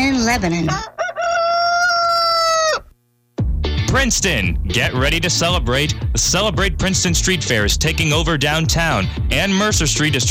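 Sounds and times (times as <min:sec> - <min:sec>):
speech: 0:00.3 - 0:01.0, 0:03.9 - 0:10.2
rooster crowing: 0:00.7 - 0:03.0.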